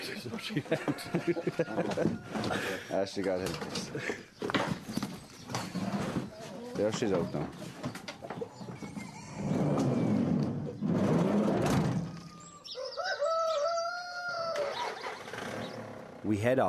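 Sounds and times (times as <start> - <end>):
laughter: 0.0 - 3.1, 3.7 - 4.5
chickens clucking in the back of a van: 0.0 - 15.8
speech: 0.1 - 4.8, 6.8 - 7.8, 16.2 - 16.6
rooster crowing: 0.5 - 2.7, 12.0 - 15.1.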